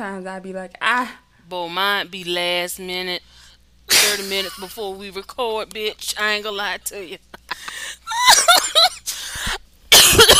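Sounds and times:
speech: 0.0 - 8.9
person coughing: 8.2 - 10.3.

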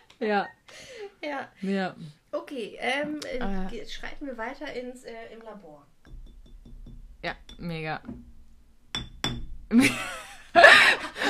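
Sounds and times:
speech: 0.2 - 6.2, 7.2 - 8.3, 9.7 - 10.3
glass clattering jangle: 6.1 - 9.6
glass clinking against glass: 6.1 - 9.6.

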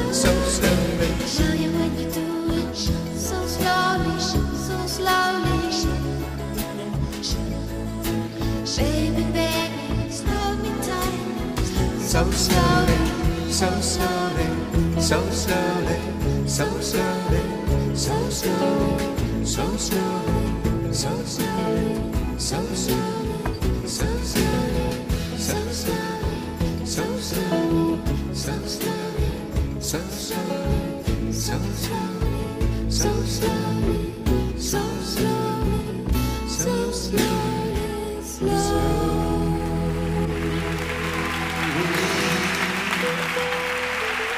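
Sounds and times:
recorded song by a singer-songwriter with steady beat: 0.0 - 44.2.

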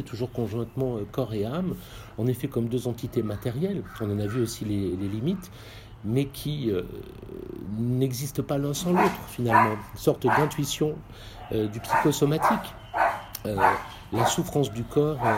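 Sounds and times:
speech: 0.0 - 12.8, 13.4 - 15.3
dog barking: 8.8 - 10.8, 11.4 - 15.3.

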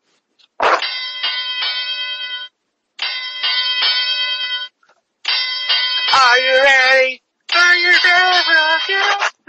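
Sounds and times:
bell struck repeatedly, metallic ringing: 0.8 - 6.5, 7.5 - 9.2.

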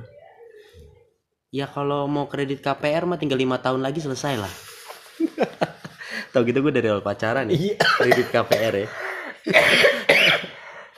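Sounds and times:
speech: 1.5 - 4.7, 6.3 - 10.1
laughter: 5.1 - 6.2
harsh coughs: 7.8 - 8.9, 9.5 - 10.6.

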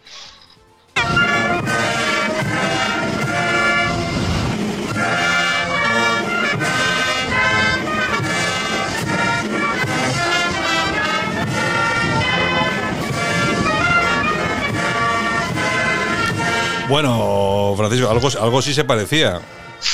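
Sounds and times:
local brass band playing a national anthem: 1.0 - 19.9
speech: 16.9 - 19.6.

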